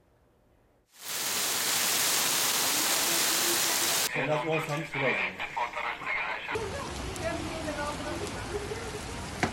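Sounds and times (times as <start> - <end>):
summer rain falling with drops pattering on a surface: 1.0 - 4.1, 6.6 - 9.5
speech: 4.2 - 5.6.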